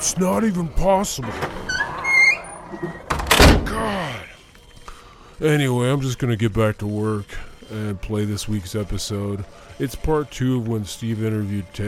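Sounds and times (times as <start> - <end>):
speech: 0.1 - 1.6, 2.7 - 3.0, 5.4 - 11.8
door hinges creaking with a thin rising squeal: 0.8 - 4.0.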